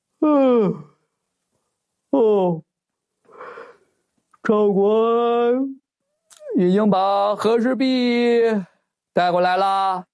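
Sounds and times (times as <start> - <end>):
speech: 0.2 - 0.9, 2.1 - 2.7, 4.5 - 5.8, 6.5 - 10.1
person acting out a yawn: 0.2 - 1.0
softer breathy exhale: 3.3 - 3.9.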